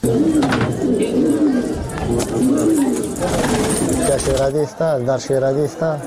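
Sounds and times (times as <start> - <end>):
pigeons cooing at a pigeon keeper's place in Kunduz: 0.0 - 4.7
voices: 0.0 - 6.0.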